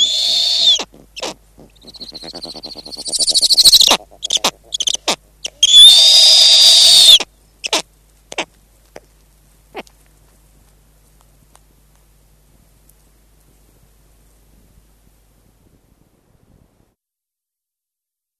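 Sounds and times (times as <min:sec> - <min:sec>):
snowy owl screeching: 0:00.0 - 0:07.8.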